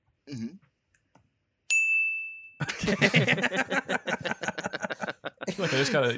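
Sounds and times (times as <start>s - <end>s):
speech: 0.3s - 0.7s, 2.9s - 3.6s, 5.6s - 6.1s
single bright bell ding: 1.7s - 2.6s
brief vocal snicker: 2.6s - 6.0s
several people talking and laughing: 2.6s - 6.1s.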